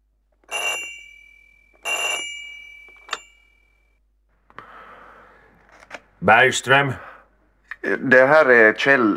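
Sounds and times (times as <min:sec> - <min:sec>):
telephone bell ringing: 0:00.5 - 0:03.8
speech: 0:06.2 - 0:07.1, 0:07.9 - 0:09.1.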